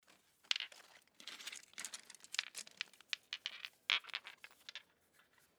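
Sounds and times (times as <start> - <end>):
stone knapping shaping a biface: 0.5 - 4.3.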